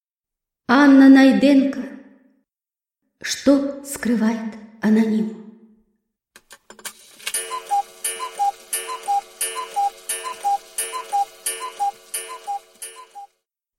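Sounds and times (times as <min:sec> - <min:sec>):
speech: 0:00.7 - 0:01.9, 0:03.2 - 0:05.4
wooden house-shaped cuckoo wall clock ticking: 0:07.3 - 0:13.4.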